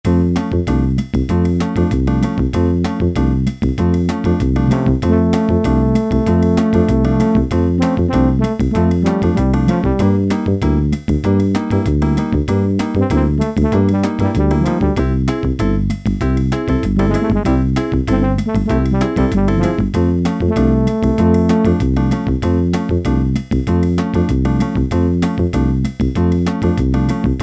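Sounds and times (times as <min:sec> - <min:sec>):
samba demo on a Yamaha SHS-10 keyboard: 0:00.0 - 0:27.4.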